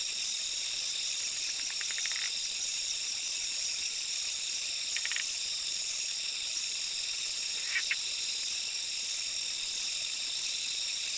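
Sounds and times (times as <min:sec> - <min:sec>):
steady shrill insect drone: 0:00.0 - 0:11.1
Zoque treefrog Quilticohyla zoque calling with clicky pulses: 0:01.5 - 0:02.4, 0:04.9 - 0:05.4, 0:07.6 - 0:08.0.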